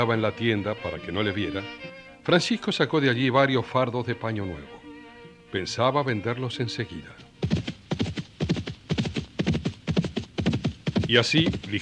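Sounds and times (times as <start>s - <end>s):
speech: 0.0s - 4.8s, 5.5s - 7.7s, 11.1s - 11.7s
horse hooves clip-clopping as a rider hurries on horseback: 7.2s - 11.7s.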